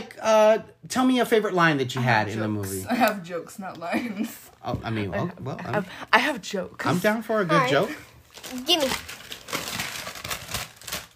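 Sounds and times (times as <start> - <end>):
speech: 0.2 - 9.2
paper crinkling and rustling: 7.6 - 11.1.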